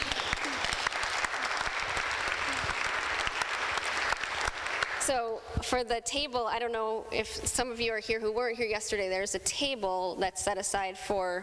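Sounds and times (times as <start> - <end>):
group of people applauding: 0.0 - 5.2
speech: 5.1 - 11.4.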